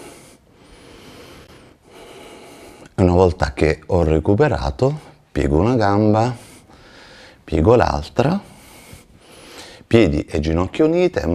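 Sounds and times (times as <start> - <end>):
slow steady breathing while lying relaxed: 0.0 - 3.0, 6.2 - 7.5, 8.4 - 9.9
speech: 3.0 - 6.4, 7.5 - 8.5, 9.9 - 11.3.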